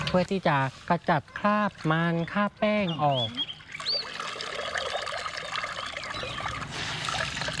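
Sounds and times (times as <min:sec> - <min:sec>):
speech: 0:00.1 - 0:03.5
water pouring from wet cloth being wrung before dyeing: 0:03.6 - 0:07.5.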